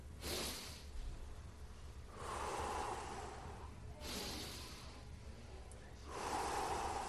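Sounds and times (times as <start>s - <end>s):
person demonstrating deep abdominal breathing: 0.0s - 1.2s, 2.1s - 5.1s, 6.0s - 7.0s.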